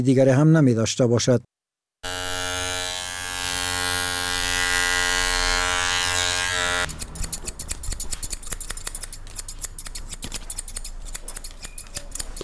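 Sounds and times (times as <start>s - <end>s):
speech: 0.0s - 1.5s
electric hair clippers buzzing at a barbershop in Kabul Afghanistan: 2.0s - 8.0s
scissors cutting hair at a barbershop in Kabul Afghanistan: 6.8s - 12.4s.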